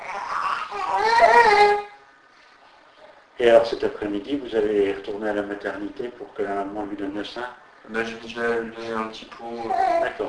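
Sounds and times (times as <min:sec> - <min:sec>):
baby fussing and crying: 0:00.0 - 0:02.0, 0:09.4 - 0:10.2
speech: 0:03.4 - 0:10.2.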